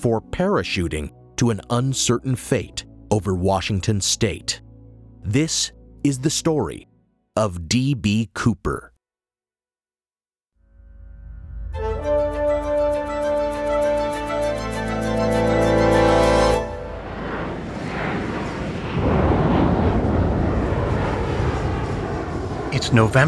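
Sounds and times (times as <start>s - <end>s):
speech: 0.0s - 4.6s, 5.2s - 8.9s, 22.9s - 23.2s
passenger plane engine hum: 11.8s - 23.2s
thunderstorm wind roaring around the aircraft: 16.6s - 23.2s
thunderclaps: 16.9s - 23.2s.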